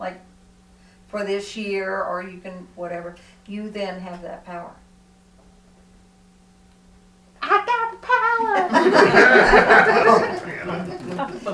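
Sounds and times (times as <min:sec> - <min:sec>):
speech: 0:00.0 - 0:00.3, 0:01.1 - 0:04.8, 0:08.8 - 0:11.5
cat meowing: 0:07.4 - 0:09.0
burst of people laughing: 0:07.4 - 0:11.5
noisy chatter: 0:07.4 - 0:11.5.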